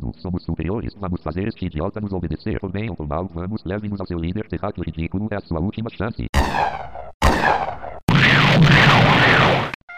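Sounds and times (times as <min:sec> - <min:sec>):
speech: 0:00.2 - 0:06.9
loud blast with long roaring rush: 0:06.4 - 0:09.8.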